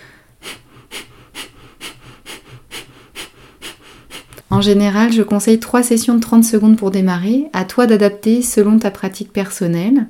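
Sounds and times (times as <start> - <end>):
sharp forced exhales in a breathing exercise: 0.0 - 4.5
speech: 4.6 - 10.0.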